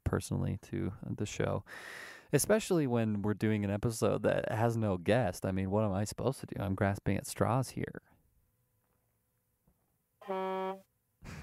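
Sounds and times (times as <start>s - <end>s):
speech: 0.1s - 8.1s
air horn blast: 10.2s - 10.8s.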